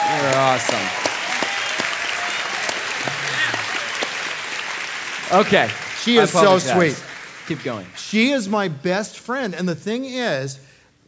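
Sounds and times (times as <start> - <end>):
crowd applauding: 0.0 - 8.4
speech: 0.2 - 1.1, 5.3 - 11.0.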